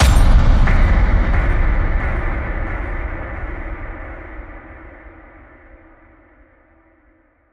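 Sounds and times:
shielding echo hit: 0.0 - 6.2.

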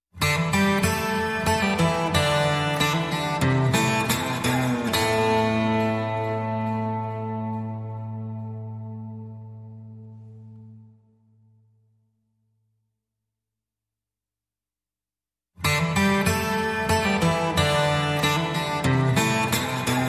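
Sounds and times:
guitar playing in A minor: 0.2 - 11.9, 15.6 - 20.0.

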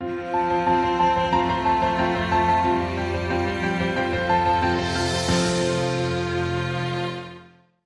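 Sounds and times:
musical sting: 0.6 - 7.3.

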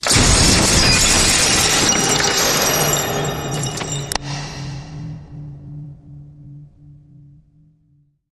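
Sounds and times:
debris snapping: 0.0 - 4.2
crashy blast impact: 0.0 - 4.5.

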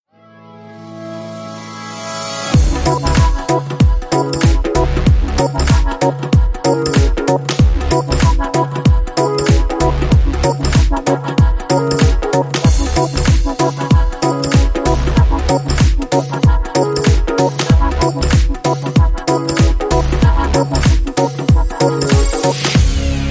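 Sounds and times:
short tabla and timba rhythm: 2.6 - 23.2.

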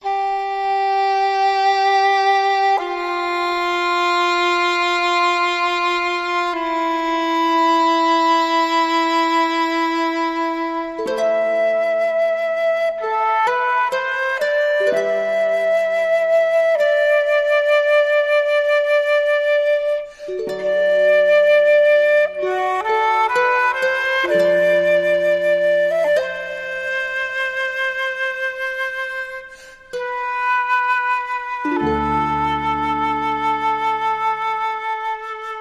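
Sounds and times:
flute: 0.0 - 35.6
harp: 0.0 - 35.6
woodwinds: 0.0 - 35.6.

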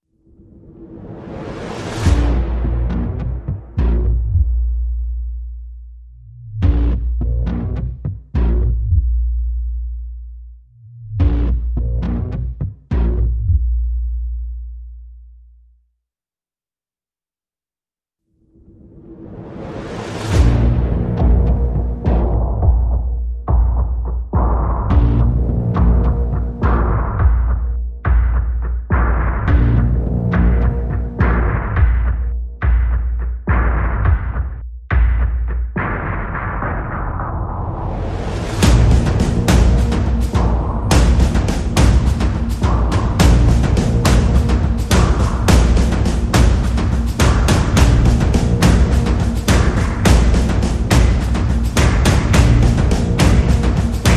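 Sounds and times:
percussion pulses: 1.5 - 5.4, 6.5 - 9.3, 11.1 - 13.8, 19.8 - 54.1.

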